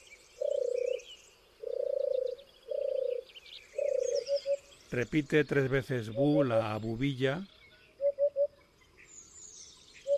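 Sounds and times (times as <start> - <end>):
faint higher birdsong twittering: 0.0 - 10.1
European turtle dove cooing: 0.4 - 4.6, 8.0 - 8.6
speech: 4.9 - 7.5.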